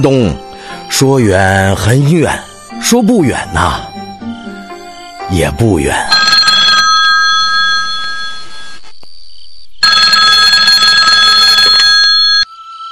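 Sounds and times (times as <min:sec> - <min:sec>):
speech: 0:00.0 - 0:03.9, 0:05.3 - 0:06.2
telephone ringing with a bright buzzing bell tone: 0:06.0 - 0:08.8, 0:09.8 - 0:12.5.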